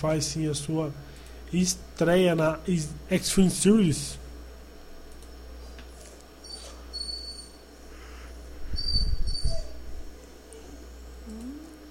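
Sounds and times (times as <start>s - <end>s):
speech: 0.0s - 4.2s
low steady hum: 0.0s - 11.8s
dog whining: 6.4s - 7.6s, 8.7s - 10.9s.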